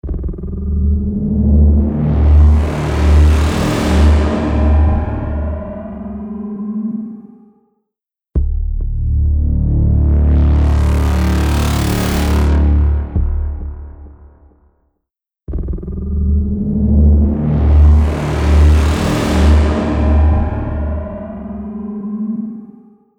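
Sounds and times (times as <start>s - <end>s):
dual harmonized bass synth: 0.6s - 6.4s, 8.4s - 14.4s, 16.0s - 22.0s.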